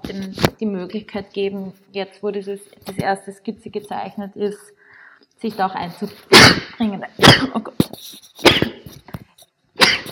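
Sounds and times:
speech: 0:00.1 - 0:04.8, 0:05.4 - 0:08.8
person sneezing: 0:06.0 - 0:09.0, 0:09.8 - 0:10.1.

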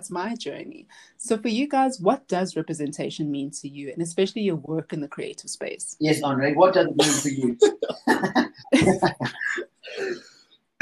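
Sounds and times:
speech: 0:00.0 - 0:10.3
laughter: 0:06.9 - 0:10.2
harsh coughs: 0:07.0 - 0:08.5, 0:09.1 - 0:10.8.

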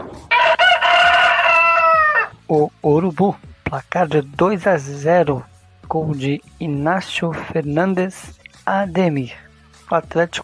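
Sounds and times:
rooster crowing: 0:00.1 - 0:02.4
speech: 0:02.5 - 0:10.4.

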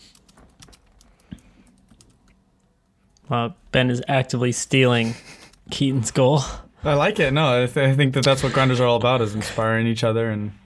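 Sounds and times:
typing on a computer keyboard: 0:00.0 - 0:02.4
speech: 0:03.3 - 0:10.6.

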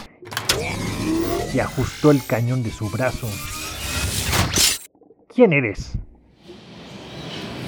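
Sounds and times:
heavy mechanical clanks of old machines activating: 0:00.0 - 0:04.9
speech: 0:01.5 - 0:03.6, 0:05.4 - 0:06.0.

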